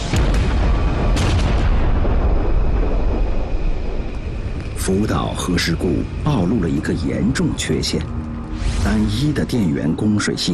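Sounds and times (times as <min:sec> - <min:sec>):
reactor explosion blasts at a nuclear power plant: 0:00.0 - 0:05.2
heavy sustained roaring rumble of a reactor explosion: 0:01.6 - 0:10.0
speech: 0:04.9 - 0:08.2, 0:08.8 - 0:10.5.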